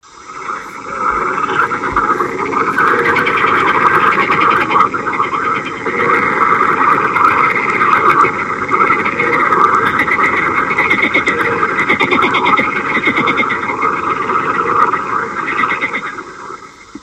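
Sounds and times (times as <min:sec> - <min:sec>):
Skokan zelený green frog: 0:00.0 - 0:17.0.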